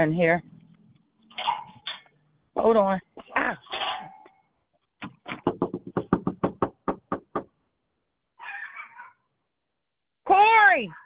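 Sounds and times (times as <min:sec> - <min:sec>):
speech: 0:00.0 - 0:00.5, 0:02.6 - 0:03.6, 0:10.3 - 0:11.0
sharp loud knocks on a door: 0:05.0 - 0:07.5.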